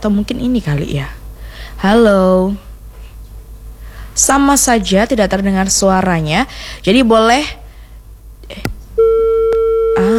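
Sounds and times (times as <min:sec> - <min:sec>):
speech: 0:00.0 - 0:02.7, 0:04.2 - 0:07.6, 0:08.5 - 0:08.7
steady electronic telephone busy tone after a call is disconnected: 0:09.0 - 0:10.1.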